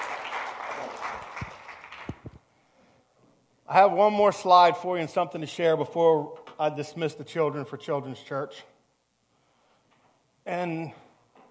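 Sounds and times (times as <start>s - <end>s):
church audience applauding a returning youth group: 0.0s - 2.2s
speech: 3.7s - 8.7s, 10.5s - 11.0s.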